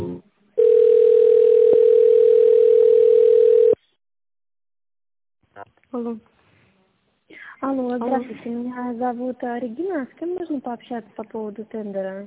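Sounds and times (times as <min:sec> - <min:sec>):
rhythmic pulsing telephone tone as a call is transferred: 0:00.6 - 0:03.8
speech: 0:06.0 - 0:06.3, 0:07.7 - 0:12.2.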